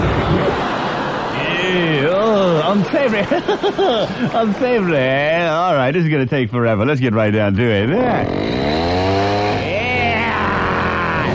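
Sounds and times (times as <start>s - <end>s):
laughter: 0.0s - 5.9s, 9.7s - 11.3s
speech: 2.8s - 8.9s
chainsaw engine revving: 7.8s - 11.3s.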